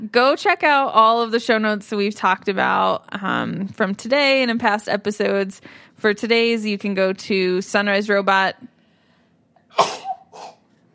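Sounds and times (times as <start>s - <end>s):
speech: 0.1s - 8.7s, 9.8s - 10.5s
person sneezing: 9.7s - 10.7s.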